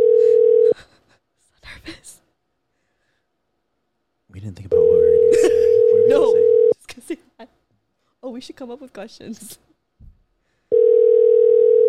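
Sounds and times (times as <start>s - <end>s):
phone ringing tone while calling: 0.0s - 0.8s, 4.7s - 6.8s, 10.7s - 11.8s
speech: 8.4s - 9.7s.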